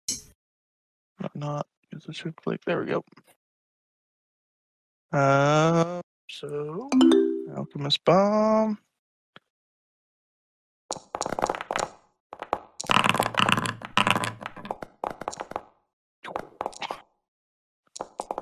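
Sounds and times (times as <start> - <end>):
speech: 1.3 - 3.4, 5.1 - 8.9
handful of dice rolling across a hard tabletop: 10.9 - 15.7.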